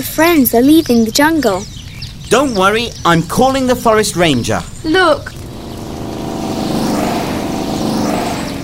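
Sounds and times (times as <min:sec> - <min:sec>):
speech: 0:00.2 - 0:05.4
two propeller airplanes droning: 0:02.4 - 0:08.6.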